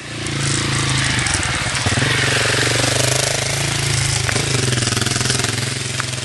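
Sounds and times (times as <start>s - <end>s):
motorcycle engine rumbling on a forest trail: 0.0s - 6.2s.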